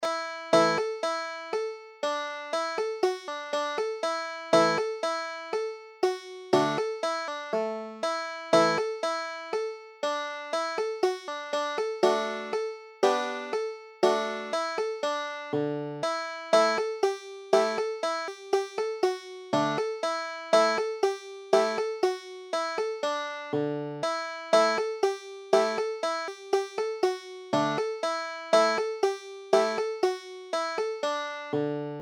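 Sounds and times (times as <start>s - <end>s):
banjo tune: 0.0s - 32.0s.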